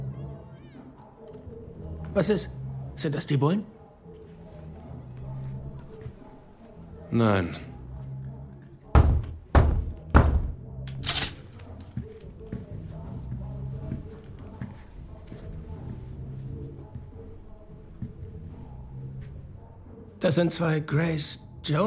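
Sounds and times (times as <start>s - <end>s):
speech: 2.1s - 3.8s, 7.1s - 7.7s, 20.3s - 21.8s
loud knocking on a door: 8.9s - 10.6s.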